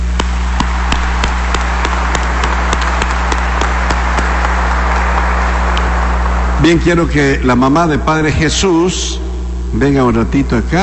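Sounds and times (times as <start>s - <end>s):
crowd audience applause: 0.0s - 6.6s
low electrical hum: 0.0s - 10.8s
speech: 6.6s - 10.8s.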